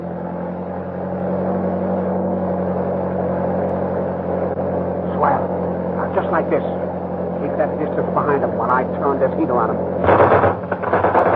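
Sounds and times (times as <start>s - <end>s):
car engine starting and revving: 0.0s - 11.3s
speech: 6.3s - 6.8s, 7.6s - 10.6s.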